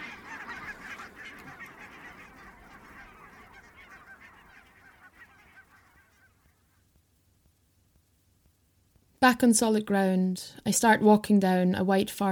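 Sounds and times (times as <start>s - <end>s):
large flock of barnacle geese honking: 0.0s - 6.8s
speech: 9.2s - 12.3s.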